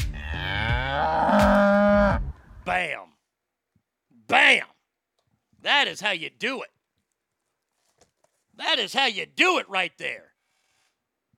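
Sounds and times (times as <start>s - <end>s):
cow mooing: 0.2s - 2.3s
speech: 5.6s - 6.8s, 8.6s - 10.3s.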